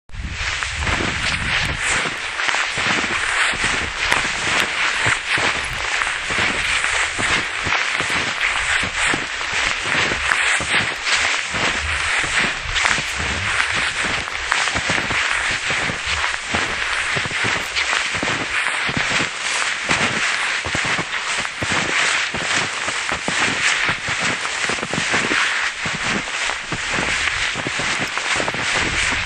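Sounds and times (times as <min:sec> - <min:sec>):
footsteps in snow: 0:00.2 - 0:29.2.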